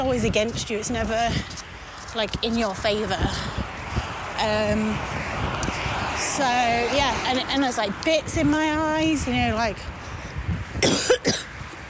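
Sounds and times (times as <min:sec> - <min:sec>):
speech: 0:00.0 - 0:03.8, 0:04.4 - 0:05.5, 0:06.3 - 0:10.0
dry cough: 0:10.8 - 0:11.5.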